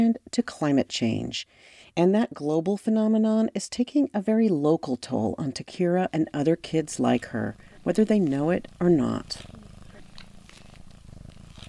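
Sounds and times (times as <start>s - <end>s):
speech: 0.0s - 9.6s
domestic cat purring while being snuggled: 4.7s - 11.6s
soft rustling: 5.6s - 11.6s.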